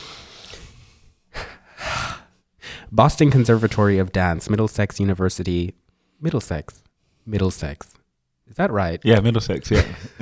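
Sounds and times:
person taking a deep breath: 0.0 - 2.9
speech: 2.9 - 10.2.

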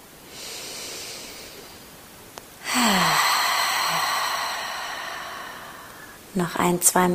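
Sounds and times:
deep inhale through the nose: 0.2 - 1.8, 2.7 - 6.2
releasing exhale through the mouth with sigh-like tone: 0.3 - 1.8, 2.6 - 6.2
speech: 6.4 - 7.1.

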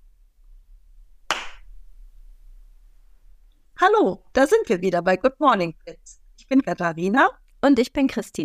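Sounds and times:
quiet room hum: 0.0 - 7.6
single sharp hand clap: 1.3 - 1.6
speech: 3.8 - 8.4.

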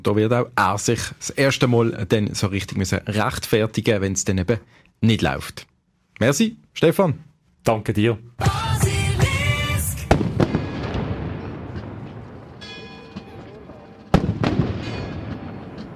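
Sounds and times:
speech: 0.0 - 8.8
ceremonial Böller cannon salute shots at the Vogelgriff in Basel: 10.0 - 12.7, 13.3 - 15.9.

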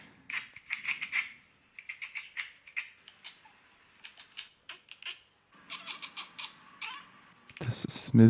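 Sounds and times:
cat chattering and chirping at birds: 0.3 - 7.2
speech: 7.7 - 8.2.

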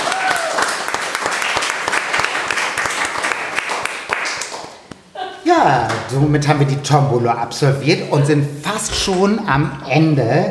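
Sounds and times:
crowd applauding: 0.0 - 4.8
speech: 5.6 - 10.5.

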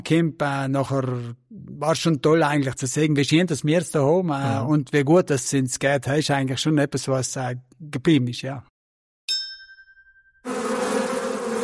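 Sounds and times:
speech: 0.0 - 8.7
bright chime: 9.3 - 10.4
swarm of bees buzzing in a beehive: 10.5 - 11.6.

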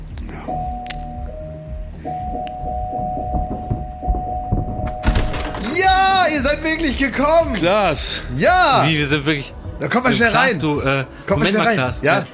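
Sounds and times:
doorbell ringing with a long steady electronic tone: 0.5 - 5.7
knocking: 2.7 - 6.0
speech: 5.7 - 12.3.

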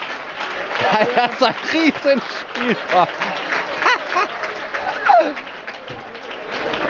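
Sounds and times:
hand clapping applause: 0.0 - 6.8
excited voices: 0.7 - 5.5
laughter: 0.8 - 5.4
speech: 1.0 - 3.4, 4.1 - 4.4, 5.2 - 6.0.

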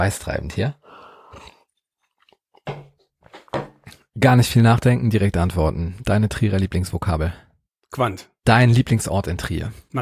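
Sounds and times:
speech: 0.0 - 1.5, 4.2 - 10.0
person sipping water with slurping and mouth clicks: 0.8 - 2.6.

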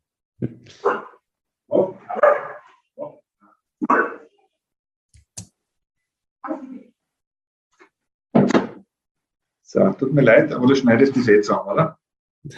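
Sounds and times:
speech: 0.4 - 1.1, 9.7 - 12.5
Australian Shepherd barking: 0.8 - 1.2, 2.1 - 2.8.

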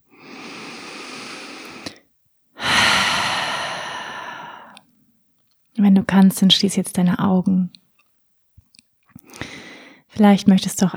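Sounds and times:
deep breathing out through the open mouth: 0.1 - 2.0, 2.6 - 4.8, 9.3 - 10.0
speech: 6.0 - 7.8, 10.2 - 10.9.

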